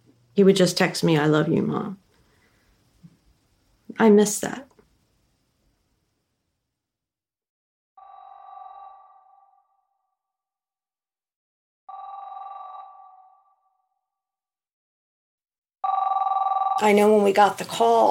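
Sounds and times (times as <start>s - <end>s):
speech: 0.4s - 2.0s, 4.0s - 4.7s, 16.8s - 18.1s
landline phone ringing in electronic trills: 8.0s - 10.2s, 11.9s - 14.0s, 15.8s - 17.4s.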